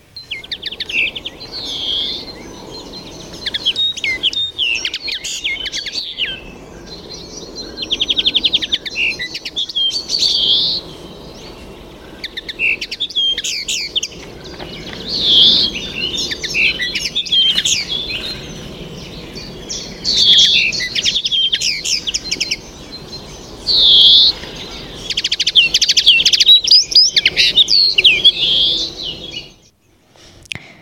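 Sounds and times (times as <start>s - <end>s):
bird singing its song: 0.0s - 30.0s.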